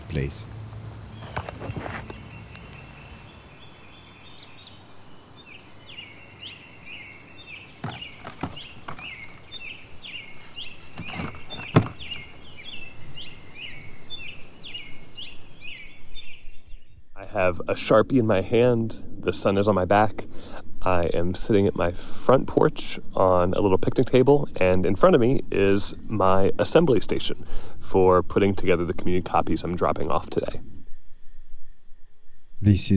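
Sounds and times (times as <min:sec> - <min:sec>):
birds singing outside Gibsonville North Carolina USA: 0:00.0 - 0:17.2
soft outdoor hush: 0:00.0 - 0:17.6, 0:32.3 - 0:32.9
speech: 0:00.1 - 0:00.6, 0:17.4 - 0:27.3, 0:27.9 - 0:30.6, 0:32.6 - 0:32.9
knocks: 0:07.8 - 0:09.6, 0:10.4 - 0:12.4
rustles: 0:07.8 - 0:12.7.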